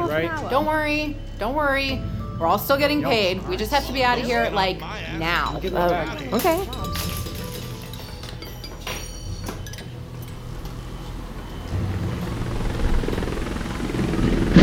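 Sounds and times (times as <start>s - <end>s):
speech: 0.1s - 7.2s
aircraft engine and rotor roar coming in to land in strong wind: 10.4s - 14.6s.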